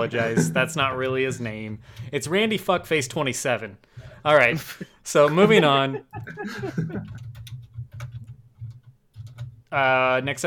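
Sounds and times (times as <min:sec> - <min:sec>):
speech: 0:00.0 - 0:07.4, 0:09.7 - 0:10.4
laughter: 0:04.6 - 0:07.2
keyboard typing: 0:06.1 - 0:09.7.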